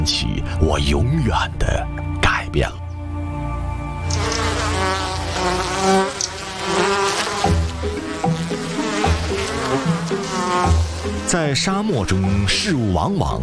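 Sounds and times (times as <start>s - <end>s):
speech: 0.0s - 2.8s, 11.3s - 13.4s
dense swarm of bees buzzing: 3.7s - 12.5s.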